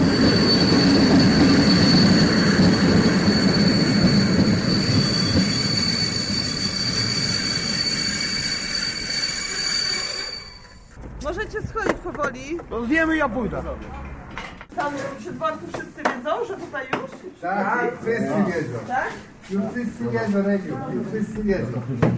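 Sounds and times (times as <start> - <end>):
train wheels squealing high-pitched at a station platform: 0.0 - 11.0
train wheels rumbling as train pulls in at a station platform: 0.0 - 15.8
speech: 12.8 - 14.0, 14.8 - 22.1.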